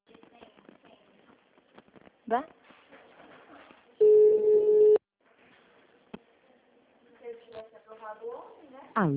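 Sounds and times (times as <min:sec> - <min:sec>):
speech: 0:02.3 - 0:02.6, 0:08.1 - 0:09.1
phone ringback tone on an outgoing call: 0:04.0 - 0:05.0.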